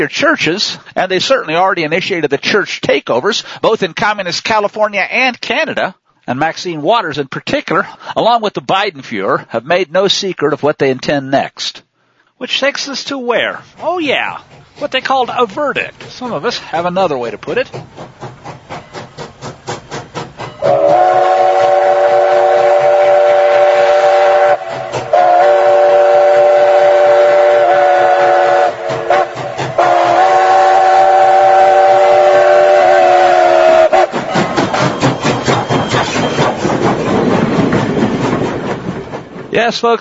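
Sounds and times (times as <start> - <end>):
speech: 0.0 - 11.8, 12.4 - 18.3, 20.6 - 21.2, 39.6 - 40.0
train rolling along the tracks: 12.9 - 40.0
train whistle blasts: 20.5 - 36.5.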